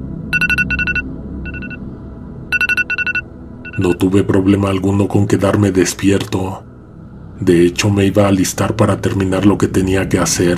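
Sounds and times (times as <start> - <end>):
low hum: 0.0 - 10.5
phone alarm electronic beeping: 0.3 - 1.8, 2.5 - 4.0
speech: 3.8 - 6.7, 7.4 - 10.5.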